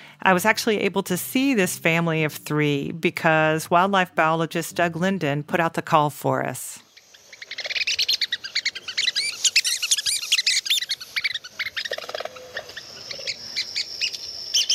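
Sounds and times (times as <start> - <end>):
speech: 0.2 - 6.8
recorded red-cockaded woodpecker territory calls from a small handheld speaker: 7.0 - 14.7.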